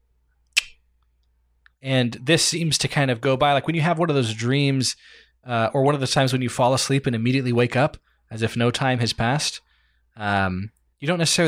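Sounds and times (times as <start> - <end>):
sharp crisp click: 0.6 - 0.8
speech: 1.8 - 11.4.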